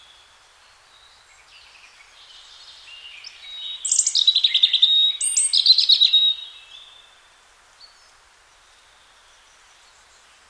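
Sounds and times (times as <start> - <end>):
European robin Erithacus rubecula singing: 3.2 - 6.9.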